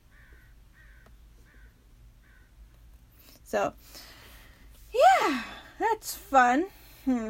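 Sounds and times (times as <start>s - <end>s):
crow cawing outside: 0.1s - 2.6s
speech: 3.5s - 4.1s, 4.9s - 7.2s.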